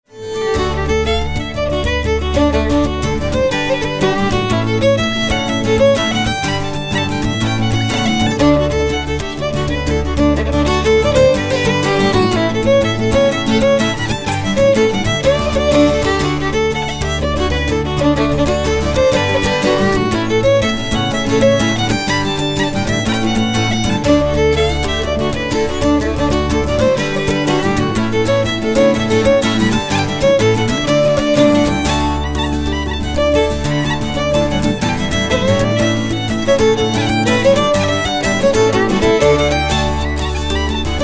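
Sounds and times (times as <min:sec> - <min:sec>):
jig tune: 0:00.2 - 0:41.0.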